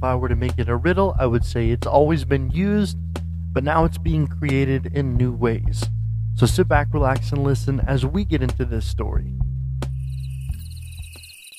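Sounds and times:
speech: 0:00.0 - 0:09.4
crickets chirping: 0:09.9 - 0:11.5.

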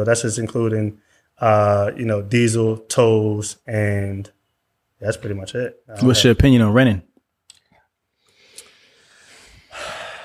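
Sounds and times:
speech: 0:00.0 - 0:04.4, 0:05.0 - 0:07.1
two people drawing deep breaths: 0:08.2 - 0:10.2.

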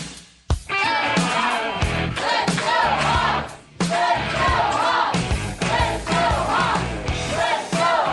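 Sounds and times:
near-sellout crowd yelling and cheering at a live sports radio broadcast: 0:00.7 - 0:08.1.

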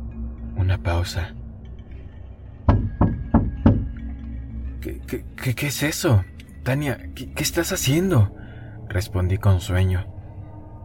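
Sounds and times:
speech: 0:00.7 - 0:01.4, 0:05.1 - 0:10.1
firm knocks on a wooden surface: 0:02.7 - 0:04.0.

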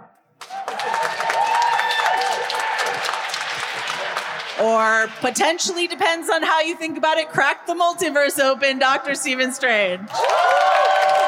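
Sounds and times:
live audience cheering with whoops and shouts: 0:00.4 - 0:06.1, 0:10.1 - 0:11.2
speech: 0:04.6 - 0:10.6.

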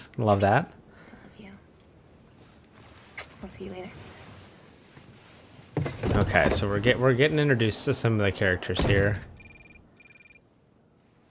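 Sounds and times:
speech: 0:00.2 - 0:00.8, 0:03.4 - 0:04.1, 0:06.2 - 0:09.3
flip phone ringtone trilling: 0:09.4 - 0:10.4.

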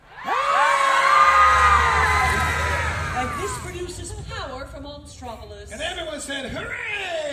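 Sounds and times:
audience of children screaming: 0:00.0 - 0:04.0.

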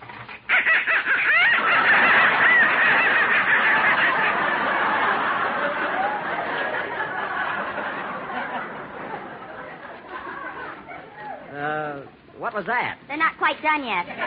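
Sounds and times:
live ducks quacking and honking: 0:00.5 - 0:05.3
laughter: 0:00.5 - 0:11.5, 0:14.0 - 0:14.2
speech: 0:12.6 - 0:14.2.

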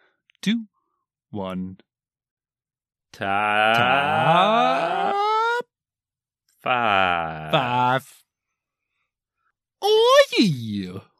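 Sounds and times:
speech: 0:00.4 - 0:00.7, 0:01.3 - 0:01.9, 0:03.2 - 0:05.3, 0:06.6 - 0:08.2, 0:09.8 - 0:11.1
voiced burp: 0:03.4 - 0:05.1.

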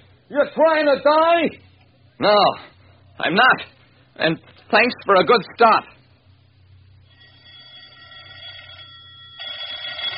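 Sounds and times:
speech: 0:00.3 - 0:06.0
bell-like telephone ringing: 0:07.0 - 0:10.1.

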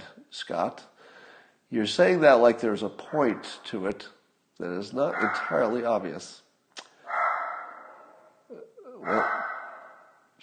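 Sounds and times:
speech: 0:00.4 - 0:00.9, 0:01.7 - 0:06.4, 0:09.0 - 0:09.4
dog barking at an intruder: 0:05.1 - 0:05.9, 0:07.0 - 0:08.4, 0:09.0 - 0:10.3.

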